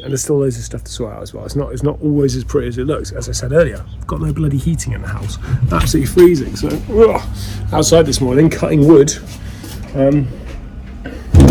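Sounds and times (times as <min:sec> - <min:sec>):
speech: 0:00.0 - 0:09.4, 0:10.0 - 0:10.4
faint noise: 0:00.0 - 0:11.4
slightly broken house door creaking open: 0:05.0 - 0:07.1.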